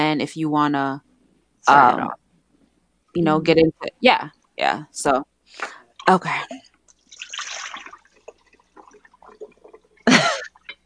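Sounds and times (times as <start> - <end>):
speech: 0.1 - 2.2, 3.1 - 6.7
water pouring: 6.9 - 10.8.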